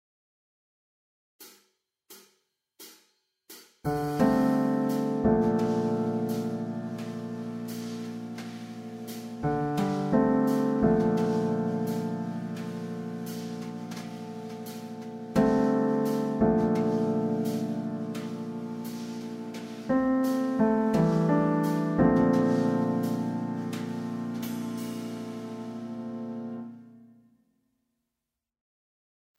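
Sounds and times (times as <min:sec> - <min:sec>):
piano accompaniment pattern: 0:03.9 - 0:27.2.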